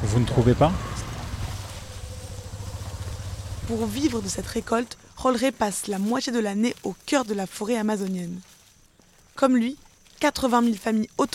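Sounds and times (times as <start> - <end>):
motorcycle engine running: 0.0 - 5.0
speech: 0.1 - 0.9, 3.7 - 8.5, 9.4 - 11.3.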